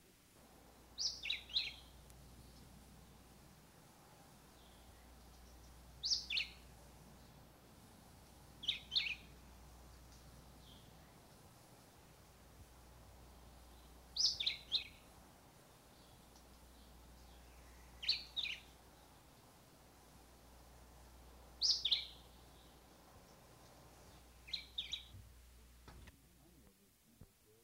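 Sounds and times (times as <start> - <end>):
faint low hum: 0.0 - 27.6
black-whiskered vireo singing: 1.0 - 2.8, 4.5 - 7.5, 8.4 - 11.5, 13.3 - 15.1, 15.8 - 19.4, 21.6 - 25.2.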